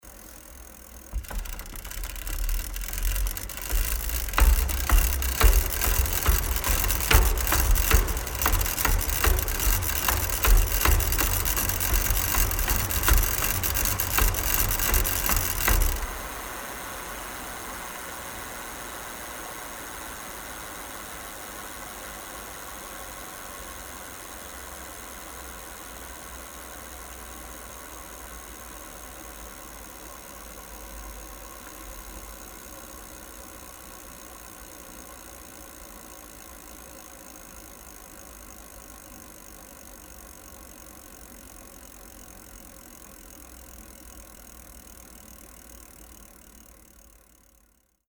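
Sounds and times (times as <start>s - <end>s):
bicycle pedalling fast: 0.0s - 18.4s, 20.4s - 47.8s.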